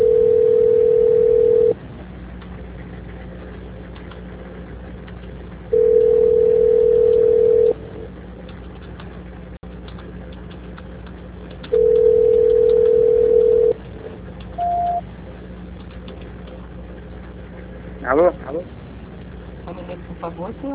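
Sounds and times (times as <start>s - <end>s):
telephone line tones during a call transfer: 0.0s - 1.8s, 5.7s - 7.8s, 11.7s - 13.8s, 14.6s - 15.0s
constant low hum: 0.0s - 20.7s
short high beep: 14.6s - 15.0s.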